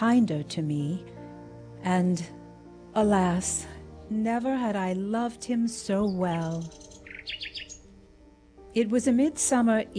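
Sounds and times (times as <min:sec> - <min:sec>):
speech: 0:00.0 - 0:01.1, 0:01.8 - 0:07.6, 0:08.8 - 0:09.9
soft steady tonal backdrop: 0:00.0 - 0:09.9
nightingale singing in the woods on a midsummer evening: 0:05.8 - 0:08.0.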